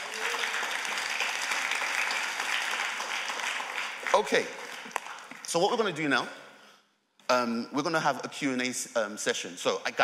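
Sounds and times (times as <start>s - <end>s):
crowd clapping: 0.0s - 6.0s
speech: 4.1s - 4.6s, 5.5s - 6.4s, 7.3s - 10.0s.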